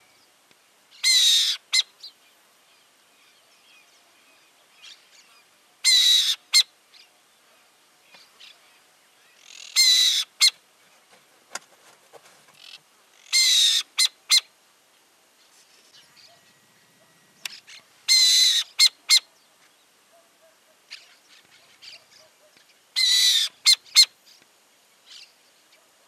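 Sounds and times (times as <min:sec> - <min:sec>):
burrowing owl calling: 0:00.9 - 0:02.1, 0:04.8 - 0:07.1, 0:08.4 - 0:10.6, 0:12.6 - 0:14.5, 0:15.9 - 0:24.2.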